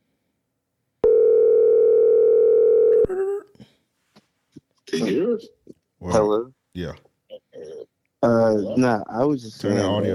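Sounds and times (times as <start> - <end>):
telephone dial tone: 1.0 - 3.1
speech: 4.9 - 7.1, 8.2 - 10.1.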